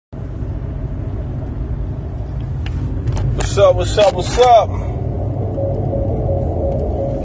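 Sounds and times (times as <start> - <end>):
low car engine rumble: 0.2 - 7.2
speech: 3.6 - 5.0
faint higher whine: 5.0 - 7.2.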